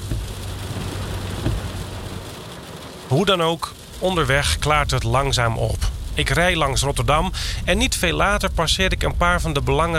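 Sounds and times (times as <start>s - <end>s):
heavy rain drumming on a driving car: 0.0s - 9.9s
low car engine rumble: 0.0s - 9.9s
speech: 3.1s - 9.9s.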